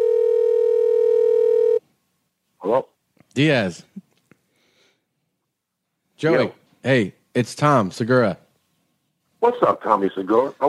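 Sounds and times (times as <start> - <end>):
telephone ringback tone from a call placed from a computer: 0.0 - 1.8
speech: 3.4 - 3.9, 6.2 - 8.4, 9.4 - 10.6.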